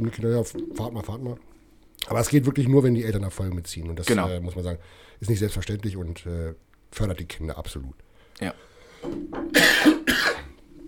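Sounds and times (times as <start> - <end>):
speech: 0.0 - 9.7
person coughing harshly: 9.5 - 10.6.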